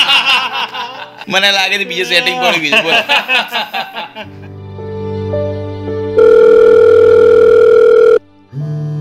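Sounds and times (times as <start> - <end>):
laughter: 0.0 - 1.3, 2.2 - 4.5
speech: 1.3 - 4.5
telephone ringing: 6.2 - 8.2.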